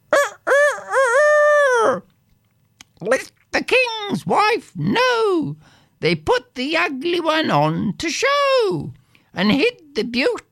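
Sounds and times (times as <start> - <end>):
neighbor's rooster crowing in a yard: 0.1 - 2.1
speech: 4.2 - 10.5.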